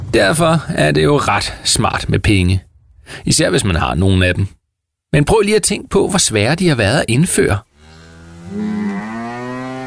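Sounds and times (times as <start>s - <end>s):
speech: 0.2s - 4.6s, 5.1s - 7.7s
cow mooing: 7.8s - 9.8s.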